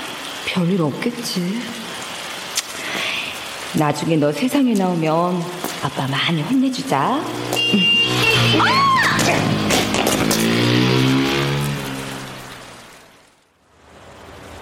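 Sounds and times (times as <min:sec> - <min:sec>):
speech: 0:00.5 - 0:02.0, 0:03.7 - 0:09.6
motorcycle engine revving hard and roaring away: 0:06.9 - 0:13.0.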